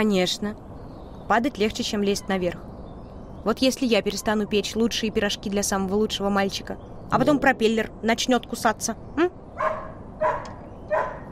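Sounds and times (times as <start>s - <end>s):
speech: 0.0s - 0.6s, 1.3s - 2.7s, 3.4s - 9.7s
dog barking: 9.6s - 11.3s.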